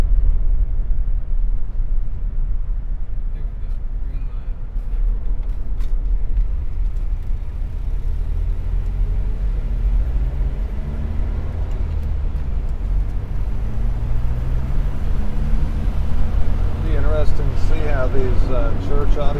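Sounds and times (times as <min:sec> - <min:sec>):
road noise through open car window: 0:00.0 - 0:19.3
faint car engine tones: 0:02.4 - 0:19.3
traffic whooshing past: 0:06.5 - 0:19.3.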